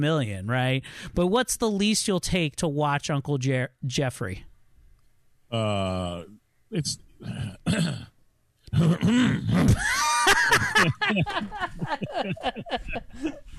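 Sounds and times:
speech: 0:00.0 - 0:04.5, 0:05.5 - 0:08.1, 0:08.7 - 0:13.5
person clearing throat: 0:07.2 - 0:08.1, 0:08.7 - 0:09.9
laughter: 0:09.6 - 0:13.4.

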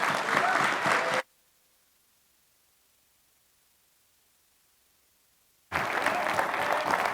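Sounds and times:
audience applauding: 0:00.0 - 0:01.3, 0:05.7 - 0:07.1.

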